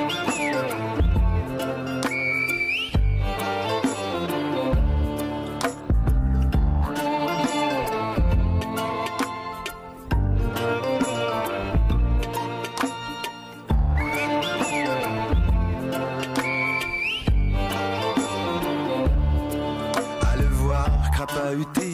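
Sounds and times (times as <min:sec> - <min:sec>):
sharp high whistled tones: 0:00.0 - 0:01.2, 0:01.9 - 0:03.4, 0:13.7 - 0:15.6, 0:16.2 - 0:18.4
busy rhythmic music: 0:00.0 - 0:21.9.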